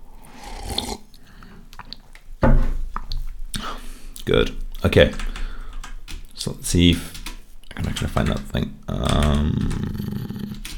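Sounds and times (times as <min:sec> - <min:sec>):
person sipping and gulping a drink: 0:00.0 - 0:02.1
speech: 0:04.2 - 0:05.3, 0:06.4 - 0:07.2, 0:07.8 - 0:10.0.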